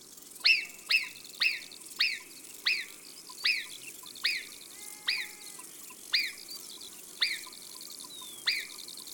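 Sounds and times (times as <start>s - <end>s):
marmot whistling in the mountains: 0.5s - 4.5s, 7.2s - 7.5s, 8.1s - 8.8s.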